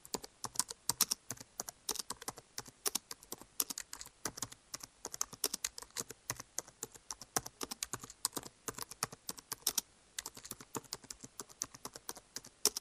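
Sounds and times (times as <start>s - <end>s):
keyboard typing: 0.0s - 12.7s.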